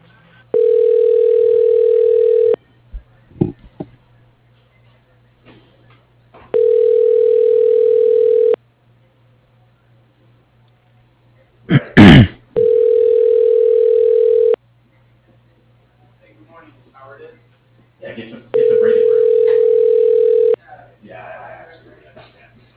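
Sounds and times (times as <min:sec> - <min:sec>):
telephone dialing tone on an office extension line: 0:00.6 - 0:02.6, 0:06.6 - 0:08.6, 0:12.6 - 0:14.6, 0:18.6 - 0:20.6.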